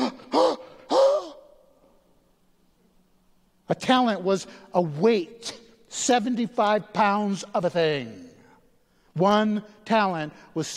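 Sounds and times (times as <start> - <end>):
person gasping in shocked surprise: 0.0 - 1.4
speech: 3.7 - 8.3, 9.2 - 10.7.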